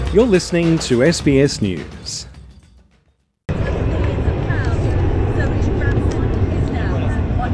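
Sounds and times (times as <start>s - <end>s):
speech: 0.1s - 2.3s
carrier aircraft taking off, mothership for a rocket-plane launch: 3.5s - 7.5s
crowd murmuring: 3.5s - 7.5s.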